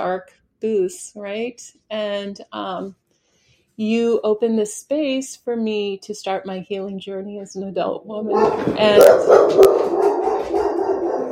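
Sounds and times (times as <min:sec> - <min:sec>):
speech: 0:00.0 - 0:03.0, 0:03.8 - 0:10.0
several small dogs barking and yipping: 0:08.3 - 0:11.3.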